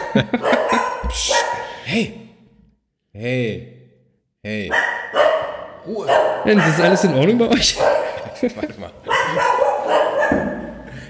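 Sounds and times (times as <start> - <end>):
laughter: 0.0 - 1.8, 7.3 - 9.7
several dogs barking excitedly: 0.0 - 1.9, 4.7 - 11.0
speech: 0.1 - 2.2, 3.2 - 3.8, 4.4 - 10.5.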